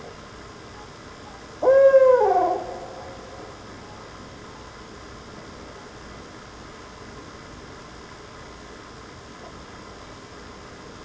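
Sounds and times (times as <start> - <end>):
owl hooting: 1.3 - 4.1.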